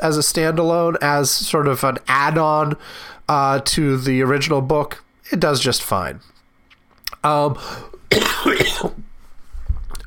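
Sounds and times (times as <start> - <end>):
speech: 0.0 - 6.3, 7.2 - 9.0
harsh burst of coughing: 8.1 - 9.1
person clearing throat with a voiced rasp: 8.1 - 9.1.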